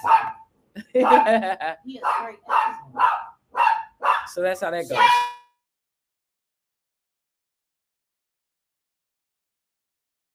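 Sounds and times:
Chihuahua yapping with high-pitched barks: 0:00.0 - 0:00.4, 0:02.0 - 0:04.3, 0:04.9 - 0:05.4
laughter: 0:00.8 - 0:01.8
speech: 0:01.0 - 0:03.2, 0:04.3 - 0:05.3.

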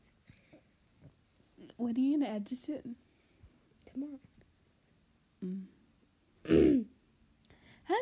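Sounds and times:
speech: 0:01.8 - 0:03.1, 0:04.0 - 0:04.3, 0:05.4 - 0:05.8
short cough: 0:06.5 - 0:06.9
soft throat clearing: 0:06.5 - 0:06.9.

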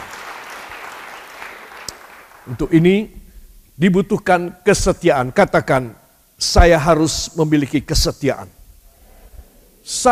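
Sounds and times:
audience applause: 0:00.0 - 0:02.5
speech: 0:02.4 - 0:03.2, 0:03.8 - 0:08.6, 0:09.8 - 0:10.1.

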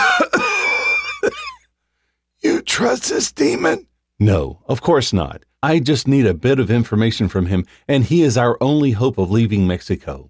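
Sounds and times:
loud harsh coughing with wheezing: 0:00.0 - 0:01.7
speech: 0:02.8 - 0:10.2.

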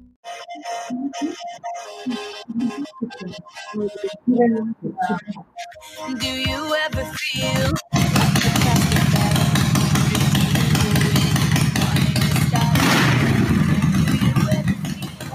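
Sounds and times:
speech: 0:00.6 - 0:08.3
engine revving: 0:07.4 - 0:15.3.

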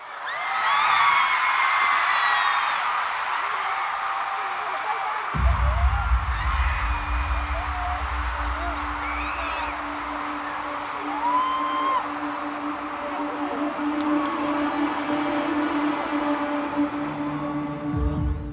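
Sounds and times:
huge stadium crowd roaring and screaming: 0:00.0 - 0:18.5
deep booming bass from concert intro: 0:05.4 - 0:10.2.

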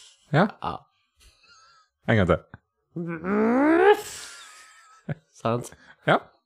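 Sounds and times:
speech: 0:00.3 - 0:00.9, 0:02.1 - 0:04.2, 0:05.1 - 0:06.3
person imitating a rhinoceros with a nasal groan and snort: 0:03.0 - 0:04.3.

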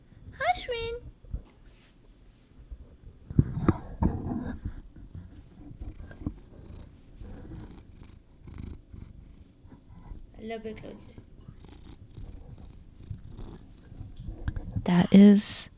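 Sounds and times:
tuxedo cat purring: 0:03.4 - 0:14.9
speech: 0:10.5 - 0:11.3, 0:14.9 - 0:15.7.

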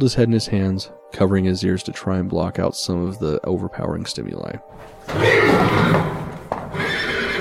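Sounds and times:
speech: 0:00.0 - 0:06.2
horse long whinny: 0:04.8 - 0:07.3.

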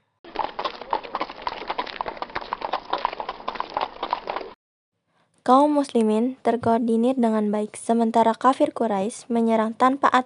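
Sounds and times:
horse hooves clip-clopping: 0:00.3 - 0:04.6
speech: 0:05.5 - 0:10.2.

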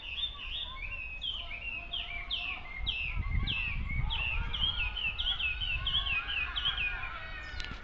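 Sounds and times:
bird singing melodic chirps and warbling phrases: 0:00.0 - 0:07.8.

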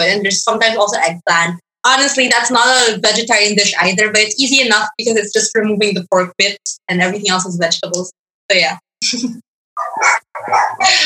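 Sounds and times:
speech: 0:00.0 - 0:11.0
dog barks from a household of dogs: 0:09.8 - 0:11.0.

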